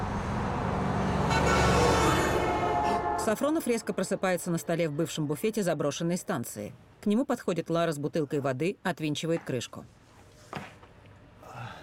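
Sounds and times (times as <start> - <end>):
car engine and road noise while driving: 0.0 - 2.9
speech: 3.3 - 10.7.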